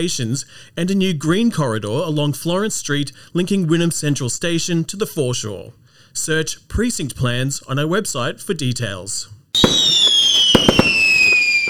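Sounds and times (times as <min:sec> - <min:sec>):
speech: 0:00.0 - 0:09.9
high gliding firework whistle at a local show: 0:09.6 - 0:11.6.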